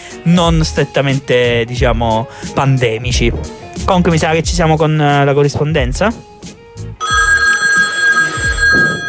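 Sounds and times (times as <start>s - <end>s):
speech: 0.2s - 6.6s
low thumps or handling noise: 3.0s - 4.8s
telephone bell ringing: 7.0s - 9.0s.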